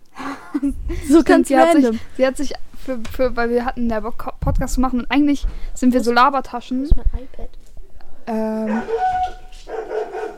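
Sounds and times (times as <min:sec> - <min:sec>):
speech: 0:00.6 - 0:07.6, 0:08.3 - 0:09.4
dog barking and yipping: 0:08.7 - 0:10.3.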